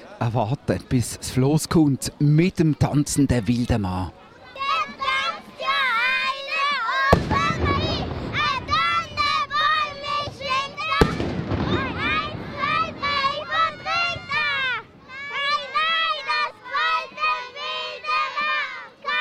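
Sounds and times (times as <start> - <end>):
children chattering and shouting in a crowd opposite the Münster: 0.0 - 19.2
lively crowd opposite the Münster: 0.0 - 19.2
speech: 0.2 - 4.2
booming black-powder salute shots: 7.1 - 9.4, 10.0 - 14.6.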